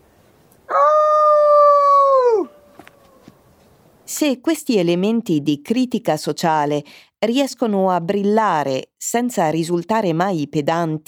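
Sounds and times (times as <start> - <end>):
wolf howling: 0.7 - 3.3
speech: 4.2 - 11.0.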